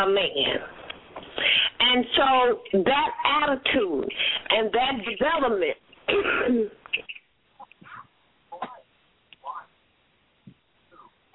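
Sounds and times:
speech: 0:00.0 - 0:00.8, 0:01.4 - 0:07.2
woman clearing her throat: 0:06.1 - 0:06.8, 0:08.5 - 0:08.9.

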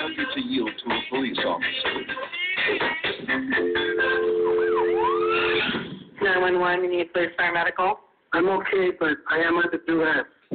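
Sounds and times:
speech: 0:00.2 - 0:04.2, 0:06.4 - 0:10.4
emergency vehicle siren during a police pursuit: 0:04.5 - 0:05.6.

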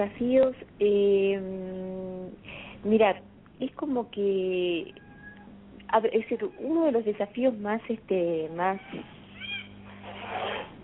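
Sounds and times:
speech: 0:00.0 - 0:05.0, 0:05.9 - 0:09.2
domestic cat meowing: 0:04.9 - 0:05.5, 0:08.8 - 0:09.8.

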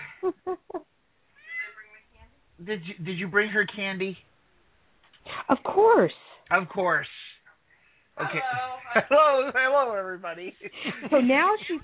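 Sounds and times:
cat meowing: 0:01.4 - 0:02.0
speech: 0:02.6 - 0:04.3, 0:05.5 - 0:07.2, 0:08.2 - 0:11.8.

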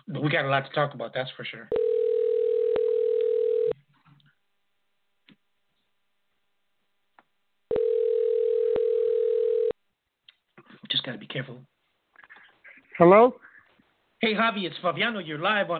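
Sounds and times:
speech: 0:00.1 - 0:01.8, 0:11.3 - 0:11.8, 0:13.0 - 0:13.5, 0:14.2 - 0:15.7
telephone dial tone while dialing a call: 0:01.7 - 0:03.8, 0:07.7 - 0:09.8.

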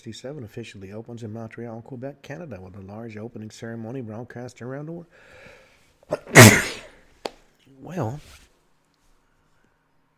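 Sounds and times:
speech: 0:00.0 - 0:06.8, 0:07.7 - 0:08.4
sharp intake of breath: 0:05.1 - 0:07.0
forceful sneeze: 0:06.1 - 0:07.0.

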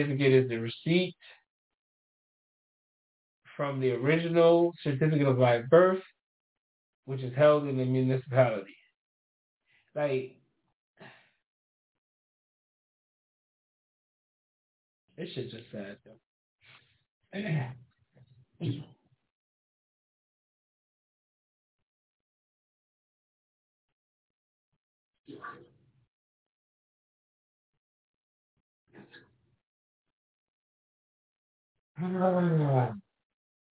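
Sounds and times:
speech: 0:00.0 - 0:01.4, 0:03.6 - 0:06.1, 0:07.1 - 0:08.8, 0:10.0 - 0:10.4, 0:15.2 - 0:16.2, 0:17.3 - 0:17.8, 0:18.6 - 0:18.9, 0:32.0 - 0:33.0
person clearing throat: 0:17.4 - 0:17.8, 0:18.6 - 0:18.9.

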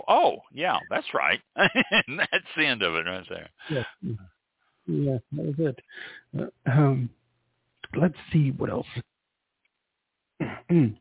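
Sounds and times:
speech: 0:00.1 - 0:04.3, 0:04.9 - 0:07.2, 0:07.9 - 0:09.1, 0:10.4 - 0:10.9
laughter: 0:01.6 - 0:03.8
person coughing: 0:10.4 - 0:10.9.

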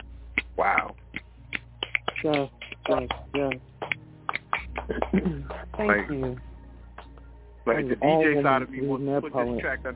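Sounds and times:
audience finger snapping: 0:00.4 - 0:05.9
speech: 0:00.6 - 0:01.0, 0:02.2 - 0:03.7, 0:04.9 - 0:06.5, 0:07.6 - 0:09.9.

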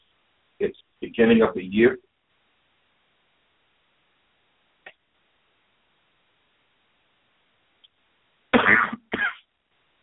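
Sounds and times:
speech: 0:00.6 - 0:02.1
person coughing after a drink went down the wrong way: 0:08.6 - 0:09.4.

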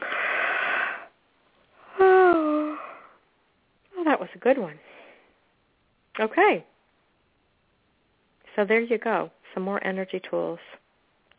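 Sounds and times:
person yawning with breathy inhale and airy exhale: 0:01.8 - 0:03.2
speech: 0:04.2 - 0:04.9, 0:06.2 - 0:06.7, 0:08.6 - 0:10.8.

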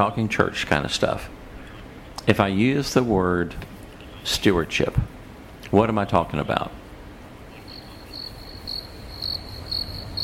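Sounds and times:
speech: 0:00.0 - 0:01.4, 0:02.3 - 0:06.8
crickets chirping: 0:07.5 - 0:10.2.

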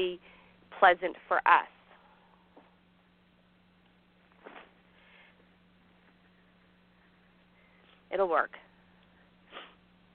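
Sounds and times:
speech: 0:00.0 - 0:01.8, 0:08.1 - 0:08.6
faint steady hum: 0:00.0 - 0:10.1
person sniffing through the nose: 0:09.5 - 0:09.8.

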